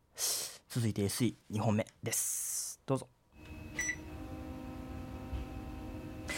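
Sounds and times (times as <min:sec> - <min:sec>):
speech: 0:00.7 - 0:03.2
steady low mechanical hum: 0:03.4 - 0:06.3
air conditioner start-up beep: 0:03.8 - 0:04.0.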